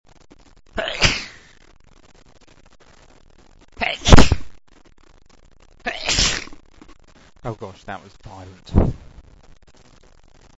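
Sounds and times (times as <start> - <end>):
man sneezing violently: 0.8 - 1.4, 3.8 - 4.4, 5.9 - 6.5.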